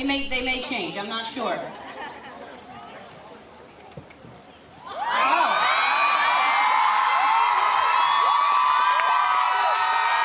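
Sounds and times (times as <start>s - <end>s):
speech: 0.0s - 1.9s
large crowd cheering: 4.8s - 10.2s
many women screaming and shrieking: 4.8s - 10.2s.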